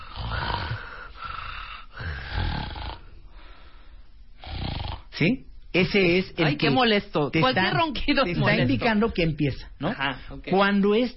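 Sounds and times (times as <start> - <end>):
person snoring: 0.0 - 3.3, 4.4 - 5.1
speech: 5.2 - 11.1.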